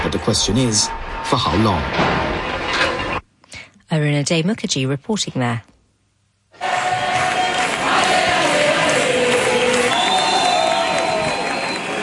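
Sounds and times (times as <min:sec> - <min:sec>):
speech: 0:00.1 - 0:02.3, 0:03.9 - 0:05.7
crowd of street protesters chanting and cheering in Spain over housing crisis: 0:06.5 - 0:12.0.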